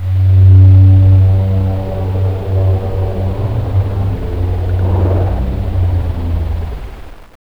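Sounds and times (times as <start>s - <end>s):
robot whale scream drone: 0.0s - 7.2s.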